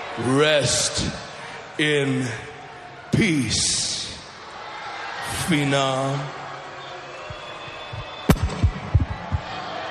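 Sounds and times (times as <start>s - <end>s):
speech: 0.2s - 2.5s, 3.2s - 4.1s, 5.3s - 6.4s
explosions as loud deep booms: 8.0s - 9.8s.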